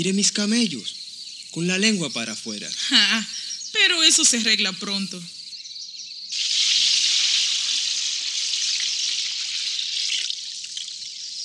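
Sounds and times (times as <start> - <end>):
speech: 0.0 - 5.4
water being drawn and poured: 6.3 - 11.4.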